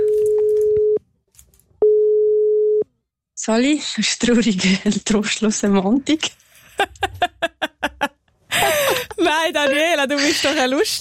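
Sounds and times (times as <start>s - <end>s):
telephone ringing tone of an outgoing call: 0.0s - 1.0s, 1.8s - 2.8s
speech: 3.4s - 7.3s, 9.3s - 10.9s
laughter: 6.7s - 10.9s.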